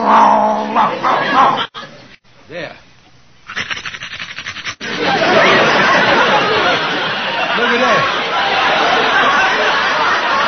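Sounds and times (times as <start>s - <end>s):
man on all fours imitating a dog's growl: 0.0s - 0.9s
laughter: 0.9s - 2.1s, 4.8s - 10.4s.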